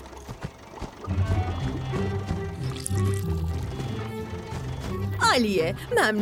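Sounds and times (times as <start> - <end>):
low steady hum: 0.0 - 6.1
fuel pouring into a tank: 2.6 - 3.6
speech: 5.3 - 6.1.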